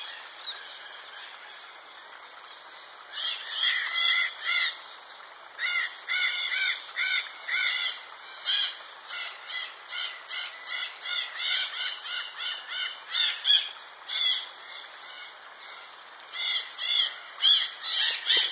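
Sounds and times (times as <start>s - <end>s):
red-shouldered macaw calls: 3.1s - 4.8s, 5.6s - 14.5s, 16.3s - 18.5s.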